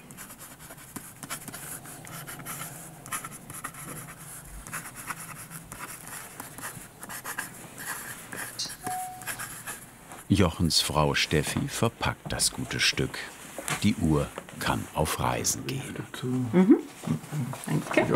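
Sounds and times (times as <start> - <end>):
pen scratching across paper writing a watch warranty card: 0.0 - 9.8
speech: 10.3 - 18.1.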